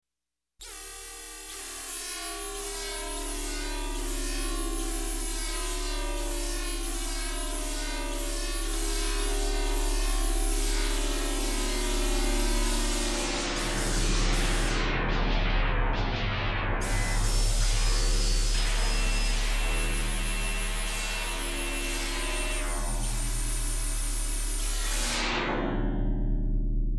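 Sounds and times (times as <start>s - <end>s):
industrial sci-fi laser: 0.6s - 26.8s.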